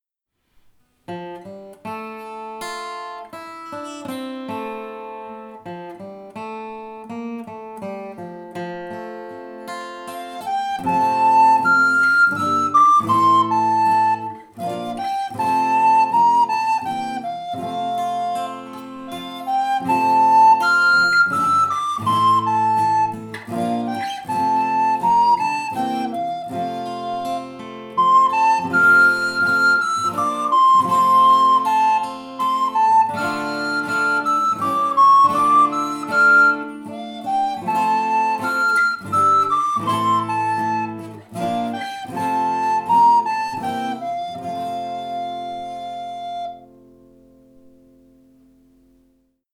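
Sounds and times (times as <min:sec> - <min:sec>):
guitar: 0:00.5 - 0:49.5
flute: 0:08.6 - 0:47.6.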